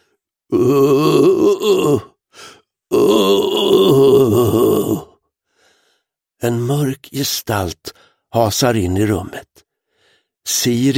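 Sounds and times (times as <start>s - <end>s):
speech: 0.5s - 2.1s, 6.4s - 9.6s, 10.4s - 10.9s
eerie drawn-out wavering voiced moaning: 0.5s - 2.2s, 2.9s - 5.2s.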